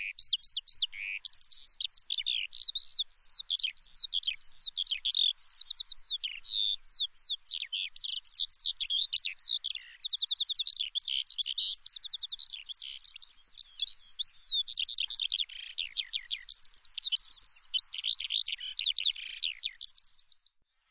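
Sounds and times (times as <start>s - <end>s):
bird song: 0.0s - 20.8s.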